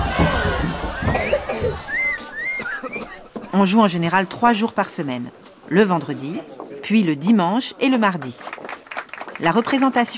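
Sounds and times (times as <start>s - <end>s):
theatre audience chattering and shouting: 0.0s - 10.1s
theatre audience members coughing: 0.6s - 3.8s
speech: 3.6s - 8.5s, 9.4s - 10.1s.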